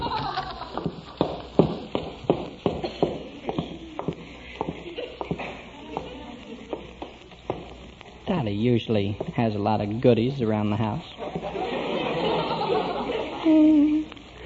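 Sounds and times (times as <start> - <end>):
laughter: 0.0 - 1.2, 11.2 - 14.0
footsteps going down a staircase in a house: 0.0 - 8.3, 9.1 - 9.5
speech: 8.4 - 11.3.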